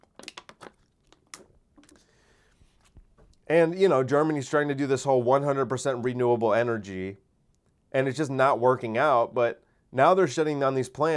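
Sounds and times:
person sipping water: 0.0s - 3.4s
faint plastic crinkle: 0.0s - 3.5s
speech: 3.5s - 7.2s, 7.9s - 11.1s.

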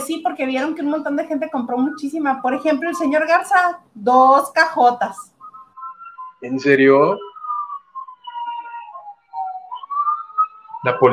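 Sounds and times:
speech: 0.1s - 5.3s, 6.4s - 7.3s, 10.8s - 11.1s
person whistling a wavering melodic tune: 5.2s - 11.1s.

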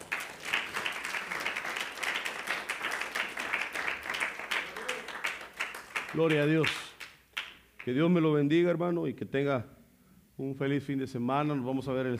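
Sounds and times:
crowd applauding: 0.0s - 7.9s
speech: 6.2s - 6.8s, 7.9s - 9.8s, 10.4s - 12.1s.

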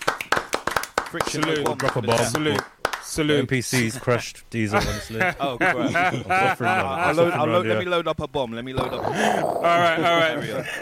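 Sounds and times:
sharp hand claps: 0.0s - 3.2s
speech: 1.1s - 10.8s
laughter: 3.8s - 7.6s, 8.8s - 10.8s.

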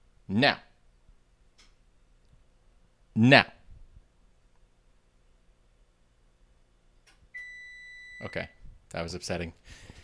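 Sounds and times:
room hum: 0.0s - 10.0s
speech: 0.3s - 0.7s, 3.2s - 3.6s, 8.2s - 9.8s
oven beeping when preheat temperature reached: 7.4s - 8.5s.

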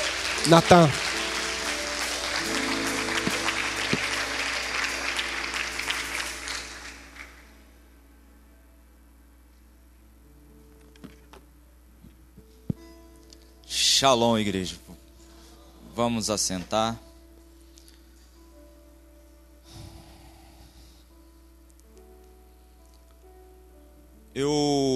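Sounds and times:
audience applauding at a church service: 0.0s - 7.6s
speech: 0.4s - 1.0s, 14.0s - 14.9s, 16.0s - 17.1s, 24.4s - 24.9s.

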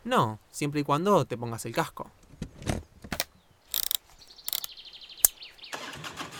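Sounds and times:
speech: 0.1s - 2.2s
motorcycle mechanical clicks and clunks: 3.2s - 4.7s.

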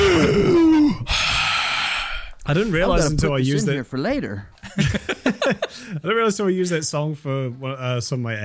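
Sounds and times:
falling groan-like vocal sound: 0.0s - 2.3s
voice imitating excited sharp breathing in: 0.9s - 2.4s
speech: 2.5s - 8.4s
laughter: 4.6s - 6.0s.

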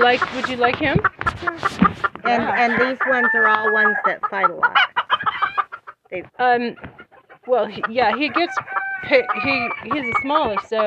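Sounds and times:
speech: 0.0s - 4.9s, 6.1s - 10.8s
roosters clucking and squawking: 0.0s - 10.8s
rooster crowing: 2.4s - 4.1s, 8.5s - 10.2s.

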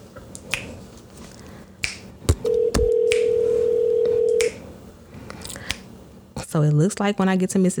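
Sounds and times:
outgoing phone call ringback tone: 2.5s - 4.4s
speech: 6.6s - 7.7s.

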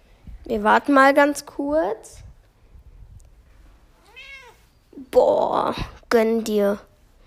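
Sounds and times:
speech: 0.5s - 2.2s, 5.0s - 6.9s
cat meowing: 4.0s - 4.6s.

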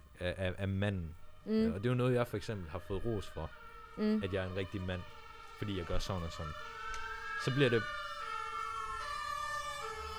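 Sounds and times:
constant low rumble of road traffic in the city of Copenhagen: 0.0s - 10.1s
speech: 0.2s - 6.8s, 7.4s - 8.0s
siren wailing in the city of Copenhagen: 1.3s - 10.1s.

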